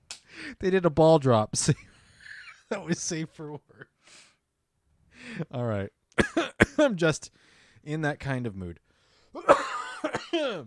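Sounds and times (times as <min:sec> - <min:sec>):
speech: 0:00.5 - 0:01.9, 0:02.7 - 0:04.3, 0:05.2 - 0:10.6
person clearing throat: 0:06.2 - 0:06.8, 0:09.4 - 0:10.6
person coughing: 0:06.2 - 0:06.9, 0:09.4 - 0:10.6.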